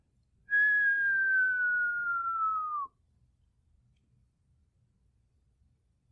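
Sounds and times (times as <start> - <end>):
person whistling imitating a falling bomb: 0.5 - 2.9.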